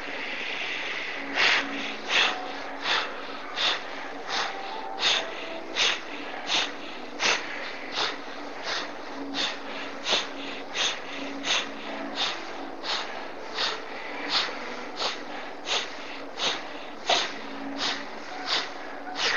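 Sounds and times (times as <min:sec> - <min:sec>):
rapid forceful bhastrika bellows breathing through the nose: 0:00.0 - 0:19.3.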